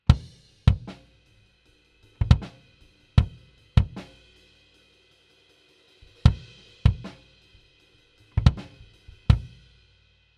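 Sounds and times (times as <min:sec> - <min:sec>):
kick drum: 0:00.1 - 0:01.0, 0:02.2 - 0:02.5, 0:03.2 - 0:04.0, 0:06.2 - 0:07.1, 0:08.4 - 0:09.6.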